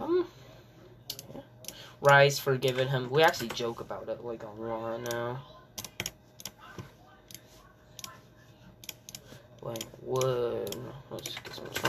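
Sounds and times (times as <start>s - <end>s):
computer mouse clicking: 1.1s - 2.8s, 5.8s - 6.6s, 8.0s - 8.2s, 8.8s - 11.8s
speech: 2.0s - 5.6s, 9.6s - 11.8s.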